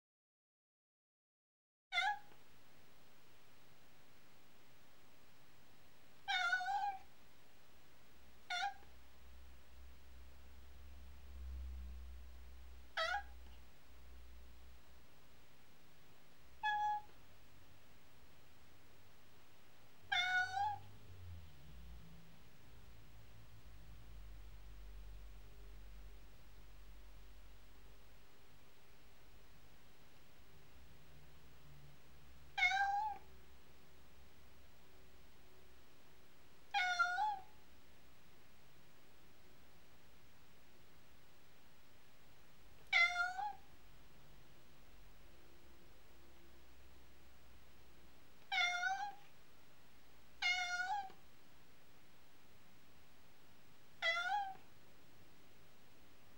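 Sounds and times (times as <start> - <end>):
cat meowing: 1.9 - 2.4, 6.3 - 7.1, 8.5 - 8.9, 12.9 - 13.4, 16.6 - 17.2, 20.1 - 20.9, 32.5 - 33.3, 36.7 - 37.5, 42.9 - 43.7, 48.4 - 49.3, 50.4 - 51.2, 54.0 - 54.6.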